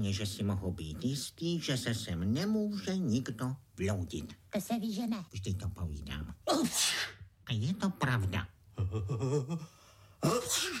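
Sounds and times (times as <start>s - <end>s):
speech: 0.0s - 10.7s
person sneezing: 6.5s - 7.2s, 10.2s - 10.7s.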